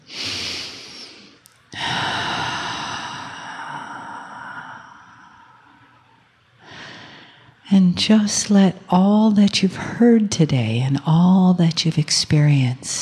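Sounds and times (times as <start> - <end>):
person taking a deep breath during a guided breathing exercise: 0.0 - 5.9, 6.6 - 7.6
speech: 7.7 - 13.0.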